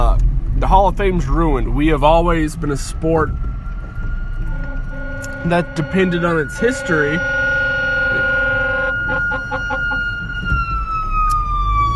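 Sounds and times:
rumbling traffic: 0.0s - 11.9s
speech: 0.7s - 3.5s, 5.4s - 7.3s
fire truck siren passing by: 0.9s - 11.9s
fire truck horn blasts: 3.7s - 10.7s.

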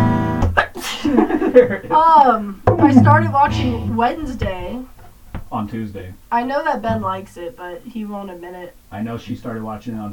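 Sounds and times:
sneeze acted out by a voice: 0.6s - 1.1s
laughter: 0.6s - 2.2s
speech: 1.5s - 10.1s.

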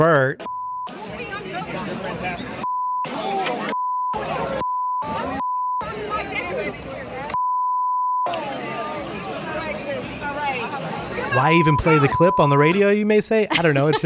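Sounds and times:
speech: 0.0s - 1.2s, 10.3s - 14.0s
censor bleeps over profanity: 0.4s - 0.9s, 2.6s - 3.1s, 3.7s - 5.9s, 7.3s - 8.3s, 11.4s - 12.8s
loud busy crowd chatter and overlapping voices: 0.9s - 7.4s, 8.2s - 14.0s
laughter: 13.2s - 14.0s.

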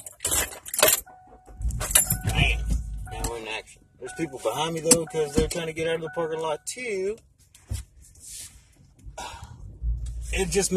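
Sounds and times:
keys jingling pulled from pocket: 0.0s - 2.8s
low rumble: 1.4s - 4.1s, 9.0s - 10.7s
speech: 4.0s - 7.3s, 10.4s - 10.7s.

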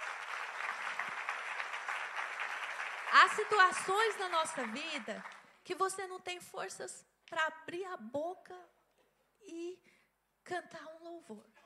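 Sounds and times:
church congregation applauding during a worship service: 0.0s - 5.6s
speech: 3.1s - 8.8s, 9.4s - 11.6s.

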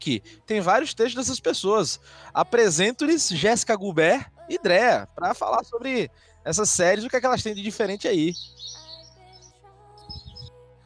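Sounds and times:
speech: 0.0s - 8.8s
small birds chirping and twittering: 6.7s - 10.5s
soft low thumps: 10.0s - 10.5s.

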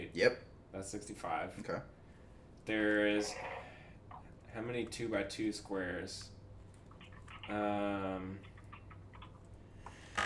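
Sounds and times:
speech: 0.1s - 2.0s, 2.6s - 3.6s, 4.5s - 6.4s, 7.5s - 8.5s
typing on a keyboard: 6.8s - 7.6s, 8.4s - 9.5s.

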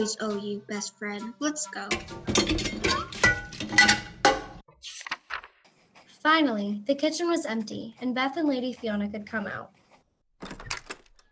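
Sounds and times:
speech: 0.0s - 4.1s, 6.2s - 9.8s
dishes clinking as they are carried to a banquet hall: 1.9s - 4.6s.

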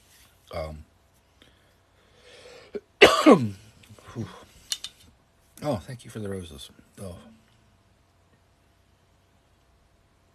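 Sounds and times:
speech: 0.5s - 0.9s, 3.3s - 3.6s, 4.2s - 4.4s, 5.6s - 7.4s
person coughing huskily: 2.8s - 3.6s.

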